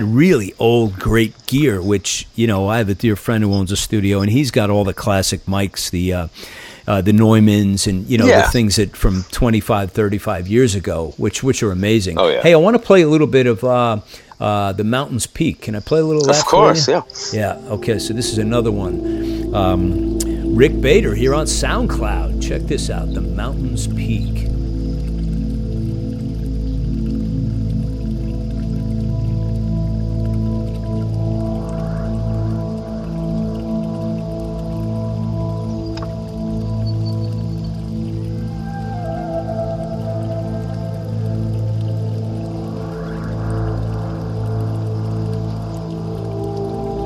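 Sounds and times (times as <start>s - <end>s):
speech: 0.0s - 24.6s
dripping water in an ambient music track: 0.0s - 47.0s
droning synth tones with slow rising sweeps: 16.3s - 47.0s.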